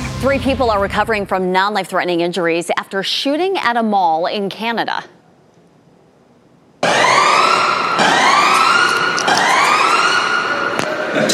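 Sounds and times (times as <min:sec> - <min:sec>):
speech: 0:00.2 - 0:05.2
emergency vehicle sirens wailing at a mall in Edmonton after a shooting: 0:06.9 - 0:11.2.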